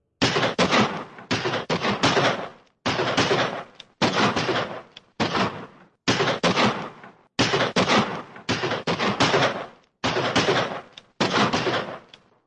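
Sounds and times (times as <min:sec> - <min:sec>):
automatic gunfire bursts from two guns: 0:00.2 - 0:12.1.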